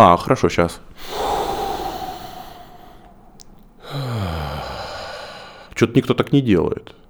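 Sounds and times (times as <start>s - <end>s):
speech: 0.0s - 1.5s, 5.8s - 7.0s
long audible exhale ending in a soft sigh-like voiced release: 0.8s - 5.8s
person drawing a slow deep breath in: 0.8s - 5.8s.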